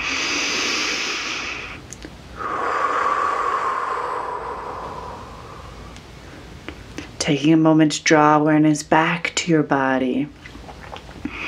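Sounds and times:
long exhale through the mouth: 0.0s - 6.4s
slow deep breath in through the nose: 0.0s - 6.5s
speech: 7.3s - 10.5s.

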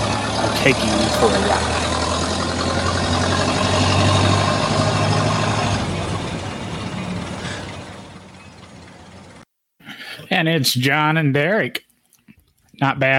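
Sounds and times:
engine sound effect mimicking a Model A car idling: 0.0s - 9.4s
speech: 0.6s - 1.8s, 10.4s - 11.9s, 12.8s - 13.1s.

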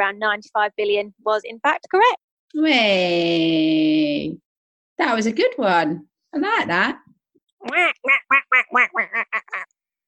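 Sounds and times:
speech: 0.0s - 4.4s, 5.0s - 7.0s, 7.6s - 9.7s
duck quacking: 7.6s - 9.7s.

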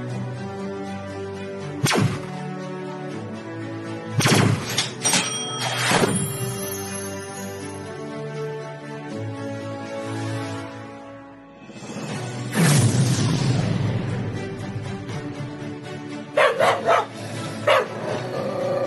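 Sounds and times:
triumphant orchestral music: 0.0s - 18.8s
dog barking: 16.3s - 18.1s.

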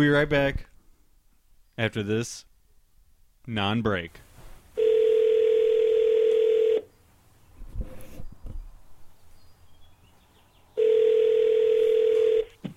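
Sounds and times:
speech: 0.0s - 0.7s, 1.8s - 2.5s, 3.4s - 4.2s
telephone dial tone: 4.8s - 6.9s, 10.8s - 12.6s.

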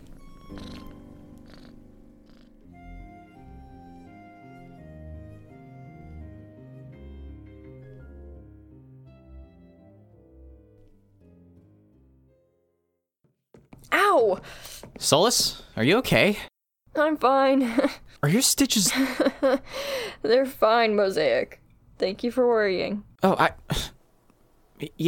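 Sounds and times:
cat purring: 0.0s - 2.8s
speech: 14.2s - 16.5s, 17.1s - 23.9s, 24.8s - 25.0s.

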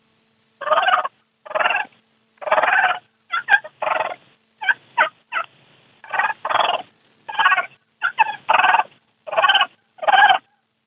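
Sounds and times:
turkey purr imitated on a diaphragm mouth call: 0.6s - 10.6s.

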